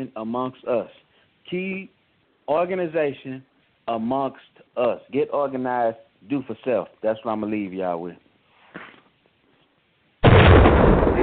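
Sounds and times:
speech: 0.0s - 8.2s
bomb explosion sound effect: 10.2s - 11.2s.

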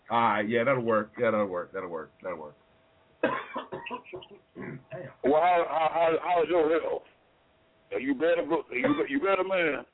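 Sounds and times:
speech: 0.1s - 2.6s, 3.2s - 7.2s, 7.9s - 9.9s
man coughing harshly: 3.2s - 5.2s, 8.8s - 9.1s.

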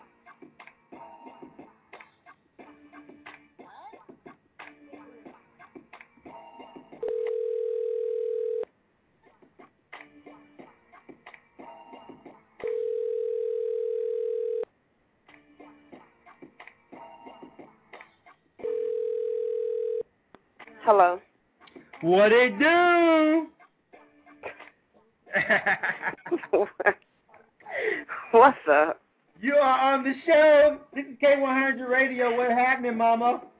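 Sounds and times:
telephone dial tone: 7.0s - 8.7s, 12.6s - 14.6s, 18.7s - 20.0s
speech: 20.9s - 21.2s, 22.0s - 23.5s, 25.5s - 27.0s, 28.4s - 28.9s, 29.6s - 33.5s
laughter: 25.3s - 27.0s.

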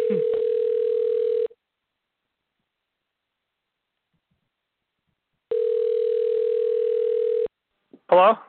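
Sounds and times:
telephone dialing tone on an outgoing call: 0.0s - 1.6s, 5.5s - 7.5s
speech: 8.2s - 8.4s.

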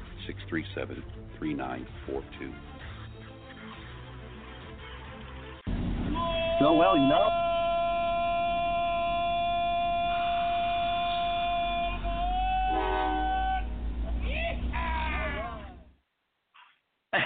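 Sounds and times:
speech: 0.3s - 2.8s, 6.6s - 7.5s
train rumbling on rails: 5.7s - 15.8s
train horn: 5.9s - 14.1s.

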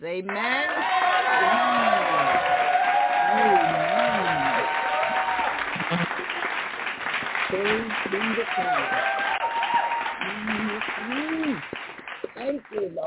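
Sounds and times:
speech: 0.0s - 2.0s, 3.3s - 4.9s, 7.5s - 9.4s
audience applauding: 0.3s - 13.0s
scattered voices and cheers: 0.4s - 6.0s, 7.5s - 11.6s.

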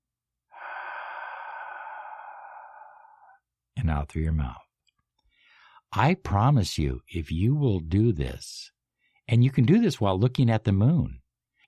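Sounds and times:
nasal inhale through the left nostril: 0.5s - 3.5s
speech: 3.8s - 4.6s, 5.9s - 11.2s.

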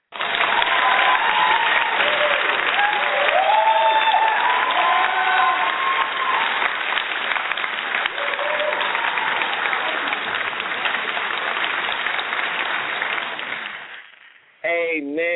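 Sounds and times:
sustained applause from a sizable audience: 0.0s - 14.4s
audience cheers and whoops: 0.1s - 7.0s, 8.0s - 10.4s.

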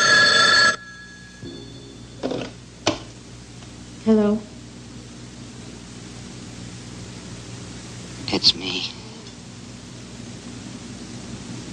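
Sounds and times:
telephone bell ringing: 0.0s - 2.4s
speech: 4.1s - 4.5s.

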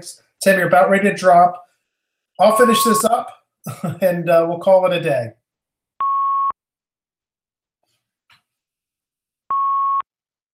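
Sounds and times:
speech: 0.0s - 1.7s, 2.4s - 5.4s
loud electronic beeps on a caller's phone line: 2.4s - 3.2s, 6.0s - 6.6s, 9.5s - 10.0s.

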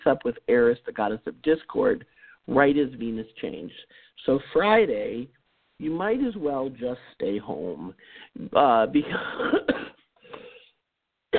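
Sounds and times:
speech: 0.0s - 10.5s
person laughing: 9.0s - 10.6s
person coughing: 9.0s - 10.7s.

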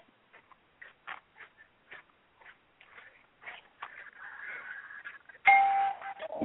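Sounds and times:
house doorbell ringing: 5.5s - 6.3s.

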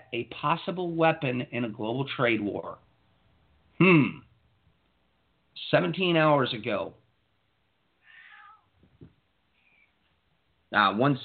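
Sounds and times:
speech: 0.1s - 2.9s, 3.8s - 4.2s, 5.7s - 7.0s, 10.7s - 11.2s
male cat short soft chirps and faint mew: 8.0s - 8.7s
male cat meowing plaintively at a door trying to get out: 8.0s - 8.8s.

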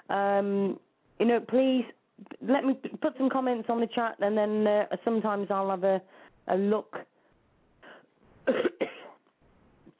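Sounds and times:
speech: 0.1s - 7.1s
person coughing from a tickling throat: 8.5s - 9.2s.

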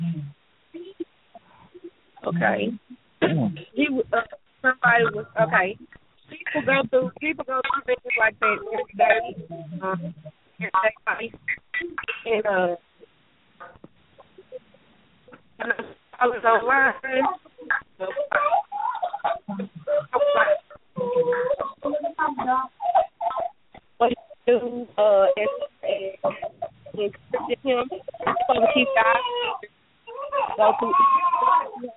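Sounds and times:
speech: 2.3s - 5.9s, 6.5s - 11.6s, 12.2s - 12.9s, 15.6s - 18.6s, 21.2s - 22.8s, 24.0s - 26.4s, 27.0s - 29.4s, 30.6s - 31.6s
children chattering over a phone line: 3.9s - 12.8s, 15.6s - 31.9s.

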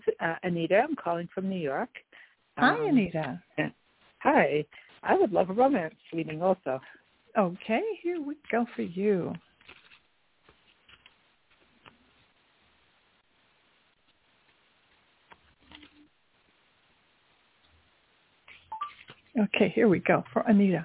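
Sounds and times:
faint hiss: 0.0s - 20.8s
speech: 0.2s - 9.5s, 19.4s - 20.8s
shuffling a deck of tarot cards: 9.3s - 12.4s, 14.1s - 16.1s, 18.5s - 19.3s.

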